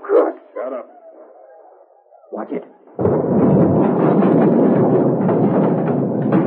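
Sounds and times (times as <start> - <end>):
speech: 2.4 - 2.8
blasting powder explosion blowing a door off: 3.0 - 6.4.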